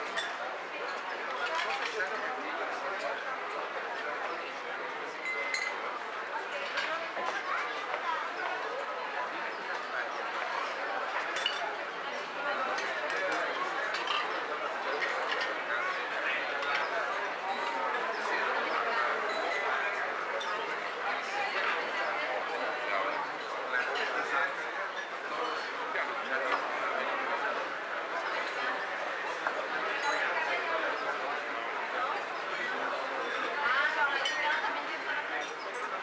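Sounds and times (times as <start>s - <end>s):
cafe crowd ambience: 0.0s - 36.0s.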